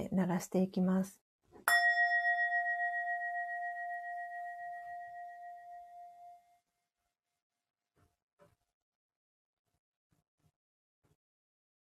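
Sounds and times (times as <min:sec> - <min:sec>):
speech: 0:00.2 - 0:01.8
singing bowl struck and ringing: 0:01.7 - 0:06.6.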